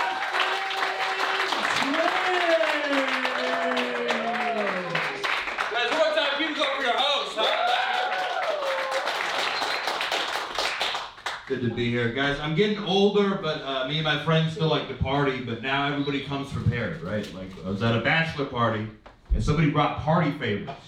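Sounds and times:
whoops and cheering voices: 0.0 - 5.2, 7.4 - 9.6
large crowd applauding: 0.0 - 11.5
speech: 11.5 - 20.8.

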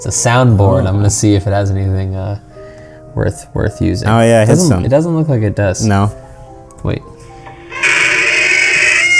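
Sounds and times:
speech: 0.0 - 2.5, 3.2 - 6.2, 6.8 - 7.1
door creaking as it swings open: 7.4 - 9.1.

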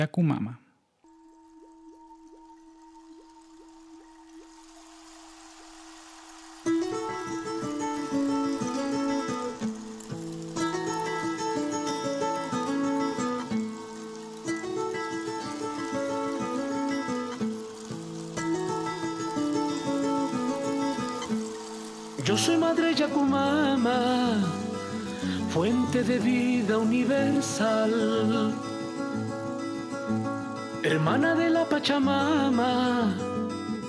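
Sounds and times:
speech: 0.0 - 0.6, 22.4 - 24.6, 25.6 - 28.7, 30.8 - 33.4
instrumental song intro with sustained melodic notes over pulsing accompaniment: 1.0 - 33.8.

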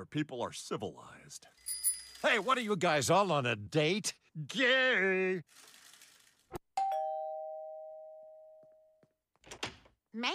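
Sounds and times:
speech: 0.0 - 5.8, 10.1 - 10.3
two-tone doorbell chime: 6.8 - 9.0.

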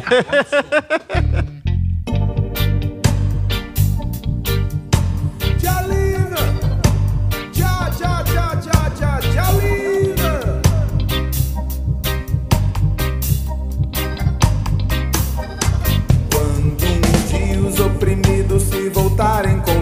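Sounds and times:
laughter: 0.0 - 1.6, 14.0 - 14.5, 15.3 - 16.5
speech: 0.1 - 1.4
loud full song with driving beat and heavy bass: 2.3 - 19.8
singing voice weaving melodic lines: 5.6 - 11.1, 16.1 - 19.8.

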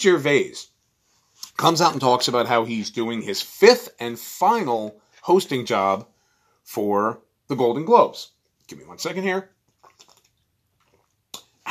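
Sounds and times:
speech: 0.0 - 0.7, 1.6 - 6.1, 6.7 - 9.6
wild cherry fizzy water being poured: 9.7 - 11.2.

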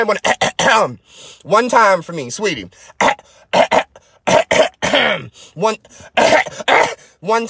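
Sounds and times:
speech: 0.0 - 7.4
loud coughing in quick pairs and short bursts: 0.2 - 0.9, 2.9 - 5.4, 6.0 - 7.2
rough voiced throat-clearing rasp: 2.9 - 5.4, 6.1 - 7.1.

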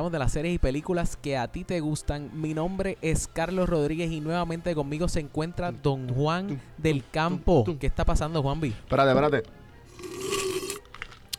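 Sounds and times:
speech: 0.0 - 10.4
slurping sip of coffee from a cup: 9.9 - 11.3.

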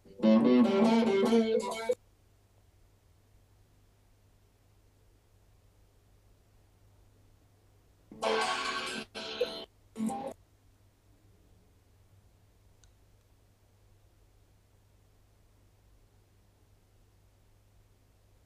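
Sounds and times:
heavily distorted electric guitar rock recording: 0.0 - 2.0, 8.1 - 10.3.

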